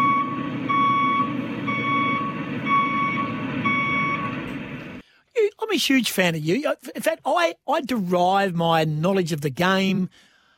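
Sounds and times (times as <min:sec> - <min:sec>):
truck reversing alarm beeps: 0:00.0 - 0:04.4
low truck diesel engine rumble: 0:00.0 - 0:05.2
speech: 0:05.7 - 0:10.3.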